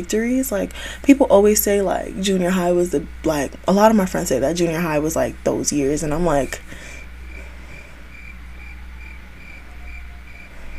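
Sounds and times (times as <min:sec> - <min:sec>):
speech: 0:00.0 - 0:06.9
low hum: 0:00.0 - 0:10.7
crickets chirping as a sound effect: 0:06.2 - 0:10.7.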